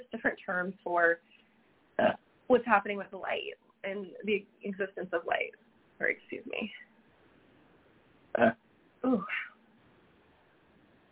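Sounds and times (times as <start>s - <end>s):
speech: 0.1s - 1.4s, 2.0s - 6.9s, 8.4s - 9.5s
short burps: 2.0s - 2.2s, 8.4s - 8.6s.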